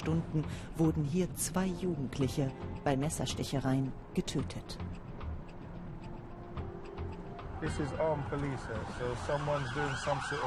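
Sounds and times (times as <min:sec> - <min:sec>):
speech: 0:00.0 - 0:05.1, 0:07.6 - 0:10.4
street noise in Croydon, South London: 0:00.0 - 0:10.4
police siren wailing from a passing police car in Croydon: 0:07.6 - 0:10.4.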